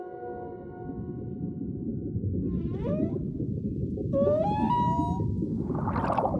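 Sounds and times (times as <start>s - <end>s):
dense low underwater rumble: 0.3s - 6.3s
underwater whale moans and whistling sweeps: 2.4s - 6.3s.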